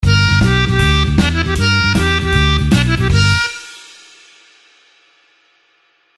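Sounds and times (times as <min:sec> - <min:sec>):
blues harp single note: 0:00.0 - 0:04.4.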